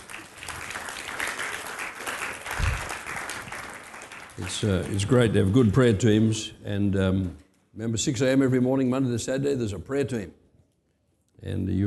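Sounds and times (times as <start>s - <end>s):
church congregation applauding: 0.0s - 5.6s
speech: 4.4s - 10.4s, 11.4s - 11.8s.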